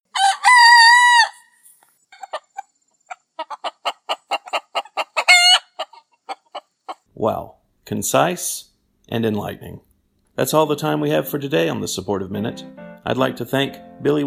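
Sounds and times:
rooster clucking: 0:00.1 - 0:01.5, 0:02.1 - 0:07.1
rooster crowing: 0:00.1 - 0:01.6, 0:05.2 - 0:05.9
speech: 0:07.2 - 0:14.2.

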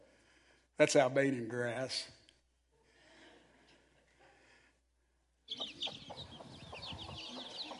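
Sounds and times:
speech: 0:00.8 - 0:02.2
chicks chirping: 0:05.5 - 0:07.7
mother hen clucking: 0:05.5 - 0:07.7.

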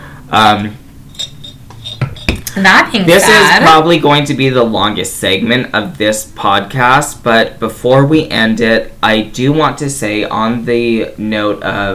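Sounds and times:
speech: 0:00.3 - 0:00.8, 0:02.6 - 0:11.9
glasses clinking in a toast to 2022: 0:01.1 - 0:02.6.

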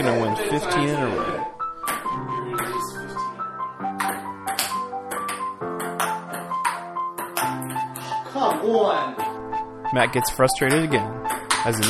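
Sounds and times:
speech: 0:00.0 - 0:01.6, 0:09.9 - 0:11.8
ping pong ball clicking on a table in a rally: 0:01.9 - 0:02.8, 0:03.9 - 0:09.4, 0:10.6 - 0:11.8.

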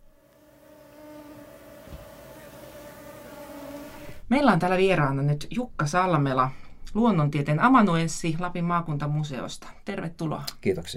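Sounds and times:
mosquitoes whining buzz: 0:00.0 - 0:04.2
low thump: 0:01.8 - 0:02.1
speech: 0:04.3 - 0:10.9.

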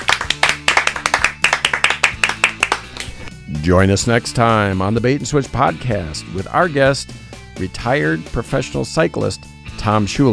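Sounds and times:
hands clapping: 0:00.0 - 0:03.3
speech: 0:03.6 - 0:10.3.

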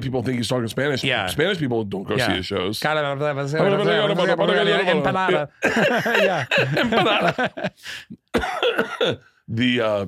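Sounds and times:
speech: 0:00.0 - 0:10.0
laughter: 0:03.8 - 0:08.2
person coughing from aspirating into the lungs: 0:05.6 - 0:07.3, 0:08.3 - 0:09.3.

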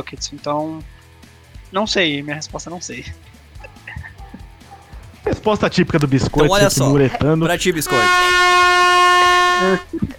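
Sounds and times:
speech: 0:00.0 - 0:01.0, 0:01.7 - 0:03.3, 0:05.4 - 0:08.7, 0:09.6 - 0:10.1
air horn blast: 0:07.9 - 0:09.8.

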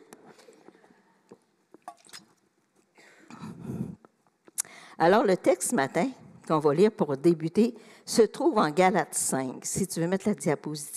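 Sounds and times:
person sipping and gulping water: 0:00.3 - 0:04.7
speech: 0:05.0 - 0:10.9.

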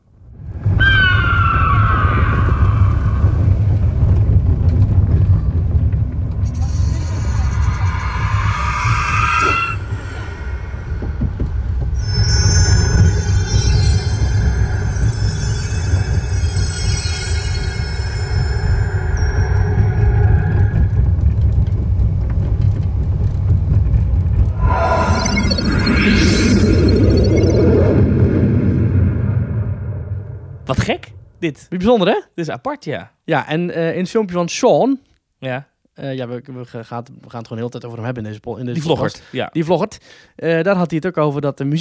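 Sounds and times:
roller coaster ride rolling along a track, played from a phone: 0:00.5 - 0:31.2
roller coaster metallic squeals and whines: 0:06.3 - 0:21.6, 0:24.5 - 0:30.4
shrill high-pitched roller coaster screech: 0:06.4 - 0:21.0, 0:24.6 - 0:28.2
speech: 0:31.4 - 0:41.7.

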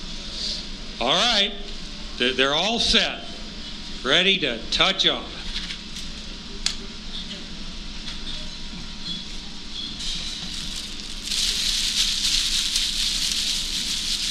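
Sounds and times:
speech: 0:01.0 - 0:03.2, 0:04.0 - 0:05.3
pitch pine bonfire burning with crackling and hissing: 0:10.0 - 0:14.2.

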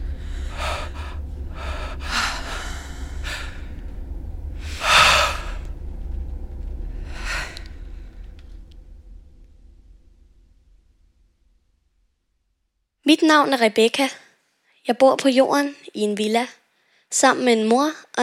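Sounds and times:
woman and man exhaling deeply after taking off space helmets: 0:00.0 - 0:03.8, 0:04.6 - 0:05.8, 0:07.0 - 0:08.3
low steady rumble: 0:00.0 - 0:13.1
speech: 0:13.1 - 0:14.2, 0:14.8 - 0:18.2.

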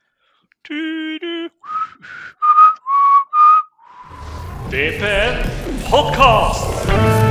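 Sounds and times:
speech: 0:00.7 - 0:02.2, 0:04.7 - 0:07.2
person whistling a short simple intro tune: 0:01.6 - 0:04.1.

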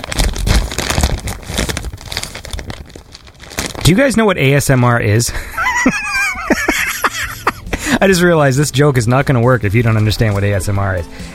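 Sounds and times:
Ziploc plastic bag crinkling while being folded: 0:00.0 - 0:05.0
speech: 0:03.9 - 0:06.8, 0:08.0 - 0:11.3
laughter: 0:05.4 - 0:08.2.

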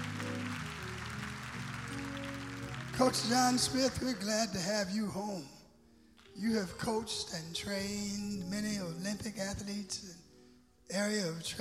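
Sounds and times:
crowd applauding: 0:00.0 - 0:04.9
organ chords: 0:00.0 - 0:10.2
speech: 0:03.0 - 0:05.6, 0:06.4 - 0:10.2, 0:10.9 - 0:11.5.

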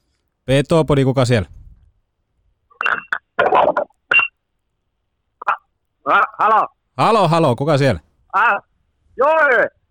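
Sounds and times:
speech: 0:00.5 - 0:01.6, 0:06.0 - 0:09.8
electronic telephone tones from an incoming caller on the line: 0:02.7 - 0:04.4.

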